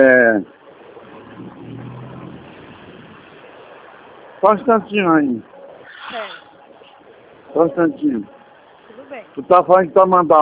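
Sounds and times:
traffic noise: 0.0s - 10.1s
bus engine rumbling: 1.0s - 3.6s
speech: 4.4s - 5.5s, 7.6s - 8.4s, 9.1s - 10.4s.

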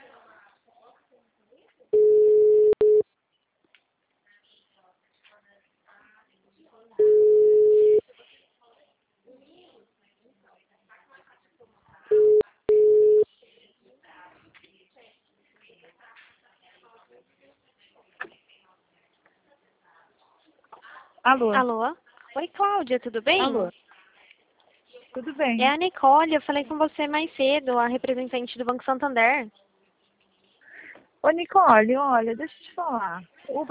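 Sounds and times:
faint noise: 0.0s - 33.6s
telephone ringback tone while a call is placed: 2.0s - 3.0s, 7.0s - 8.0s, 12.1s - 13.2s
speech: 21.3s - 23.8s, 25.2s - 29.6s, 31.2s - 33.6s.

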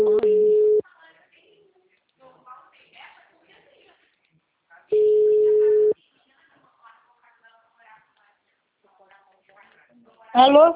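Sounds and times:
faint phone-line speech: 0.0s - 0.8s, 4.9s - 6.0s
telephone busy tone after a dropped call: 0.0s - 0.8s, 5.0s - 6.0s.

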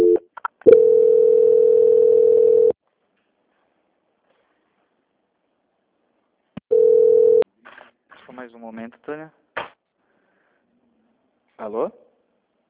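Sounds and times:
telephone line tone on a call being transferred: 0.0s - 2.8s, 6.7s - 7.4s
speech: 8.5s - 9.4s, 11.6s - 12.0s.

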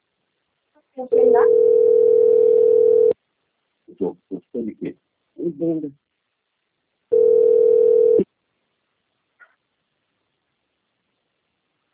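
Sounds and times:
speech: 1.0s - 3.0s, 4.0s - 6.0s
low steady telephone tone while a call is connecting: 1.1s - 3.2s, 7.1s - 8.3s.

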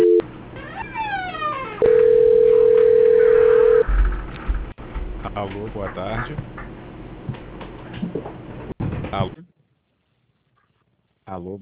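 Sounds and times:
telephone tones during a call transfer: 0.0s - 0.3s, 1.8s - 3.8s
speech: 5.7s - 6.6s, 9.2s - 9.4s, 11.3s - 11.6s.

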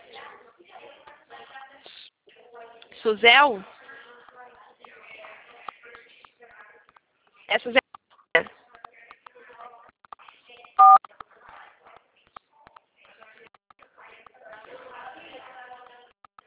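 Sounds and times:
speech: 3.0s - 3.7s, 7.6s - 7.8s
telephone keypad tone during a phone call: 10.8s - 11.0s.

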